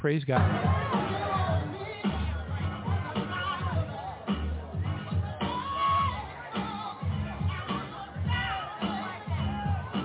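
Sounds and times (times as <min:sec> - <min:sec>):
speech: 0:00.0 - 0:00.8
large rally crowd cheering and shouting: 0:00.3 - 0:10.0
whoops from rally crowd: 0:05.5 - 0:06.2.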